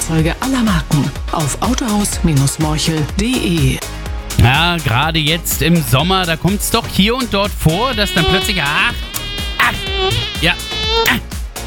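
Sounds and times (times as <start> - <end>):
speech: 0.1 - 9.1, 9.7 - 11.4
mosquito buzzing: 7.6 - 11.2.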